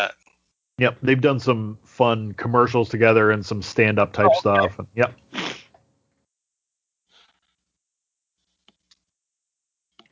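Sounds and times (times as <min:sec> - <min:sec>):
speech: 0:00.0 - 0:00.2, 0:00.8 - 0:05.2
laughter: 0:00.8 - 0:05.1
breathy yawn with a rushing exhale: 0:04.2 - 0:04.8.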